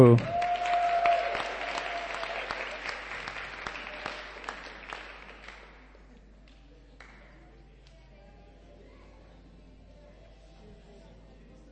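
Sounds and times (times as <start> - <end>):
speech: 0.0 - 0.4
audience applauding a doctor: 0.0 - 6.0.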